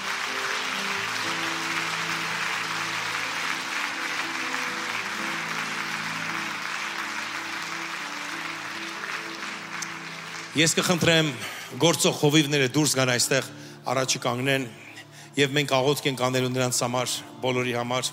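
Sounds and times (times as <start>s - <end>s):
crowd applauding at an annual church conference: 0.0s - 11.8s
speech: 10.6s - 14.8s, 15.4s - 18.1s.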